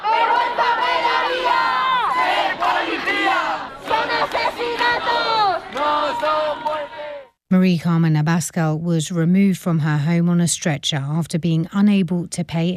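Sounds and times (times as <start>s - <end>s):
large crowd chanting: 0.0s - 7.4s
speech: 7.5s - 12.7s.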